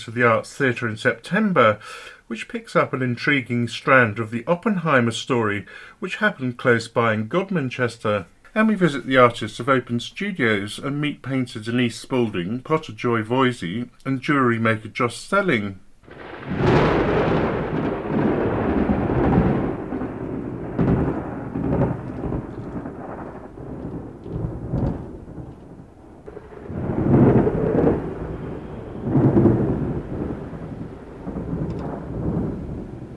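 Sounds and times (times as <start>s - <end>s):
speech: 0.0s - 16.8s
deep rolls of thunder rumbling: 16.0s - 33.1s
heavy rain: 16.0s - 33.1s.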